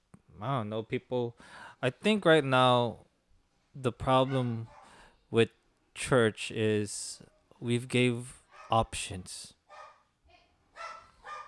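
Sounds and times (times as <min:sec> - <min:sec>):
speech: 0:00.4 - 0:03.1, 0:03.8 - 0:09.6
dog barking: 0:04.2 - 0:05.0, 0:08.5 - 0:08.8, 0:09.7 - 0:10.1, 0:10.7 - 0:11.4.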